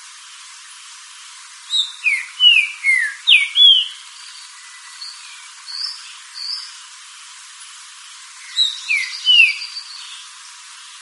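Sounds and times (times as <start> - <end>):
Green-winged saltator song of falling whistles: 1.7 - 6.7, 8.4 - 10.2.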